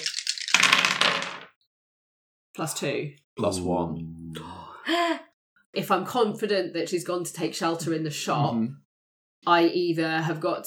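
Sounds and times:
dice rattling and clattering across a hard surface in an opposed roll: 0:00.0 - 0:01.5
speech: 0:02.6 - 0:08.8, 0:09.4 - 0:10.6.

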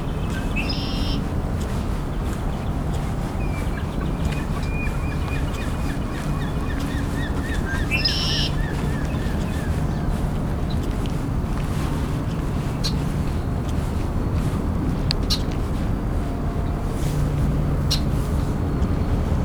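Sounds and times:
herring gull calling: 0:00.0 - 0:01.3, 0:03.4 - 0:10.1
other bird notes: 0:00.0 - 0:19.1
steady rumble of wind or water: 0:00.0 - 0:19.4.

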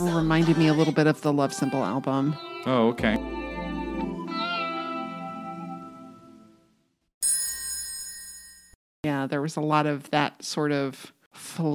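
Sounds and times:
speech: 0:00.2 - 0:03.4, 0:09.4 - 0:11.7
song playing: 0:01.6 - 0:06.4
small bell ringing: 0:07.2 - 0:08.8.

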